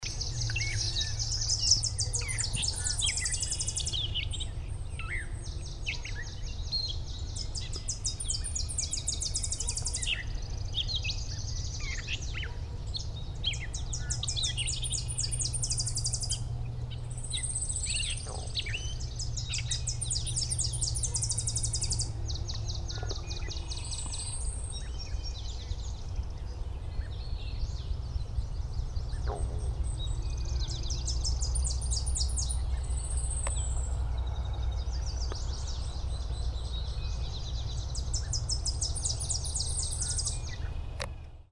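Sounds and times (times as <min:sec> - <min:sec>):
Tennessee Warbler in Finzel Maryland: 0:00.0 - 0:41.5.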